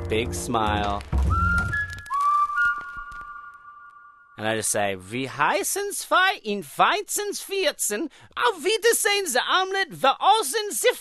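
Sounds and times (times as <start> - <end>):
speech: 0.1 - 1.4, 4.4 - 10.9
person whistling a wavering tone imitating spoken German: 1.2 - 4.2.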